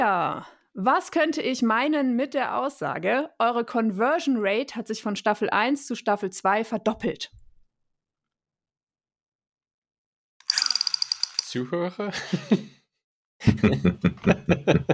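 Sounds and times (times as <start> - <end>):
speech: 0.0 - 7.4, 11.5 - 12.8, 13.4 - 14.9
rapid sharp mechanical clicks from a person firing a machine gun: 10.4 - 11.6
laughter: 12.0 - 12.8, 13.4 - 14.9.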